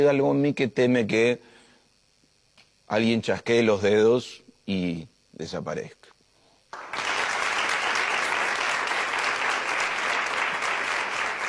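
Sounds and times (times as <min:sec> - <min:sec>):
speech: 0:00.0 - 0:01.5, 0:02.9 - 0:06.1
large audience applause: 0:06.7 - 0:11.4.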